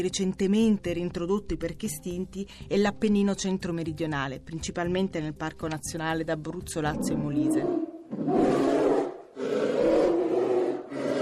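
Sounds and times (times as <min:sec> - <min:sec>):
speech: 0:00.0 - 0:08.9
brown bear growling roars: 0:07.0 - 0:11.1.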